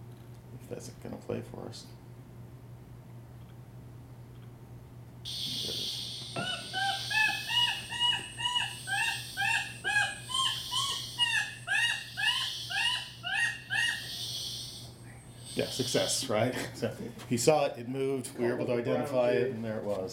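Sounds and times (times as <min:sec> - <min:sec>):
steady low hum: 0:00.0 - 0:20.1
speech: 0:00.7 - 0:02.0, 0:15.8 - 0:20.1
sharp rising calls of bird flushed from cover: 0:05.3 - 0:16.2.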